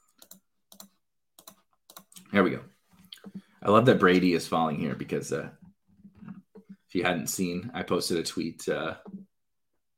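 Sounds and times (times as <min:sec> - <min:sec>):
computer mouse double-clicking: 0:00.1 - 0:02.3
speech: 0:02.4 - 0:02.7, 0:03.6 - 0:05.6, 0:06.9 - 0:09.1.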